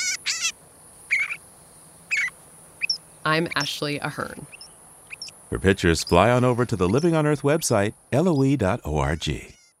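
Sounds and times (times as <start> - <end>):
northern shrike singing in bright warbling bursts: 2.0 - 9.7
speech: 3.2 - 4.6, 5.5 - 9.6.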